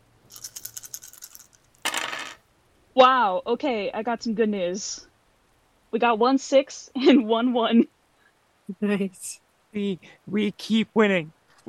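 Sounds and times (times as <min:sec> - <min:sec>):
seven dice rattling and clattering: 0:00.3 - 0:02.4
speech: 0:03.0 - 0:05.1, 0:05.9 - 0:08.0, 0:08.7 - 0:11.6.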